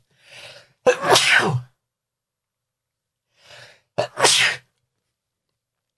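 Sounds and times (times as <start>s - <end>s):
loud sneezes with short breathy inhales: 0.9s - 1.7s, 4.0s - 4.7s.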